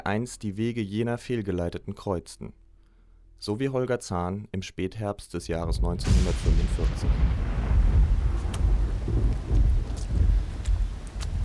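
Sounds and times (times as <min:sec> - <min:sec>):
speech: 0:00.1 - 0:02.6, 0:03.4 - 0:07.5
deep rolling thunder: 0:05.6 - 0:11.4
steady rain: 0:06.1 - 0:11.4.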